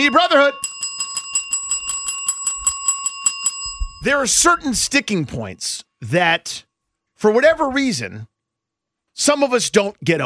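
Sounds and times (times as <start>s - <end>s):
speech: 0.0s - 0.7s, 4.0s - 8.3s, 9.2s - 10.2s
small bell ringing rapidly: 0.0s - 5.0s.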